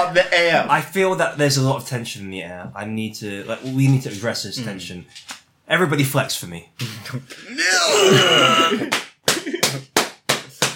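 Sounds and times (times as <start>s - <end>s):
speech: 0.1s - 9.1s
strained drawn-out vocal groan: 7.4s - 8.9s
sharp loud slaps on skin: 8.9s - 10.7s.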